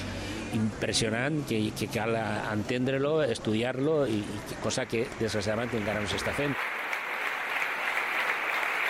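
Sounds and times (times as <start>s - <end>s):
speech: 0.5s - 6.6s
large crowd applauding at an award ceremony: 5.0s - 8.8s.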